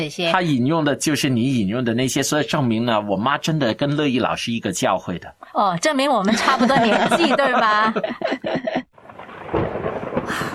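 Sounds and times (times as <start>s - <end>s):
speech: 0.0s - 8.8s
laughter: 6.2s - 8.9s
thunder from an approaching storm: 8.9s - 10.5s.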